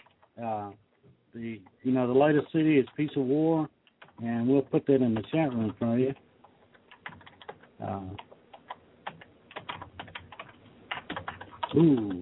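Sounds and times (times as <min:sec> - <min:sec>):
typing on a computer keyboard: 0:00.0 - 0:00.3, 0:03.9 - 0:04.3, 0:05.0 - 0:12.2
speech: 0:00.4 - 0:06.2, 0:07.8 - 0:08.3, 0:11.7 - 0:12.2.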